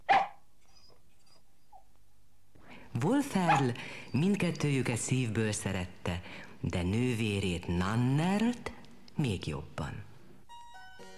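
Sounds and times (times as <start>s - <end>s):
dog giving a sharp loud bark: 0.0s - 0.4s, 3.5s - 3.7s
dog giving a faint whine: 0.0s - 2.0s, 3.4s - 5.0s
speech: 3.0s - 10.1s.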